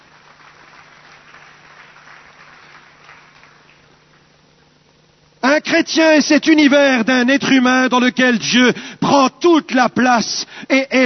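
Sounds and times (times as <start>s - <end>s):
audience at a Christian sermon applauding: 0.0s - 4.4s
faint low hum: 0.0s - 11.0s
speech: 5.5s - 11.0s.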